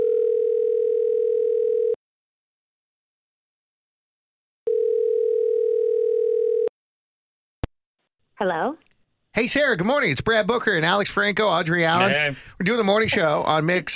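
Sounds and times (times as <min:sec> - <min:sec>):
phone line ringback tone as a call is placed: 0:00.0 - 0:02.0, 0:04.7 - 0:06.7
speech: 0:08.4 - 0:08.8, 0:09.4 - 0:13.9.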